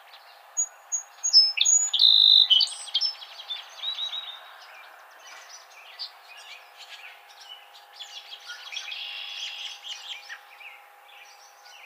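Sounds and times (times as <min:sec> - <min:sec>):
song sparrow singing: 0:00.0 - 0:11.8.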